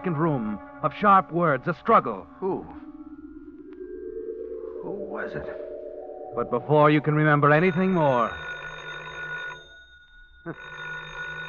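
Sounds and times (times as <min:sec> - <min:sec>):
speech: 0:00.0 - 0:02.8, 0:05.1 - 0:05.7, 0:06.3 - 0:08.5, 0:10.4 - 0:10.8
telephone bell ringing: 0:07.3 - 0:11.4.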